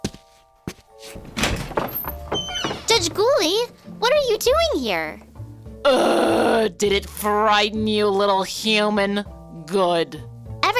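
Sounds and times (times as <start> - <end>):
heavy door in a courthouse office thudding: 1.2 - 3.4
speech: 3.0 - 10.3.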